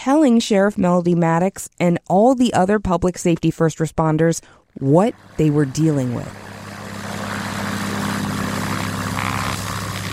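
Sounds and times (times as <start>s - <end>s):
speech: 0.0s - 6.5s
single-engine Cessna propeller plane droning overhead: 5.1s - 10.1s.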